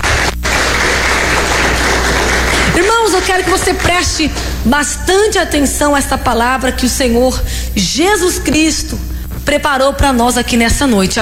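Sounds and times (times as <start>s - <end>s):
continuous applause in a church service: 0.0s - 4.6s
speech: 3.2s - 11.2s.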